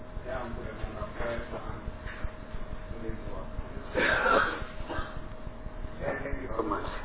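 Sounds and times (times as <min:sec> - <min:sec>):
steady room noise: 0:00.0 - 0:07.0
man giving a short harsh cough: 0:04.0 - 0:05.2.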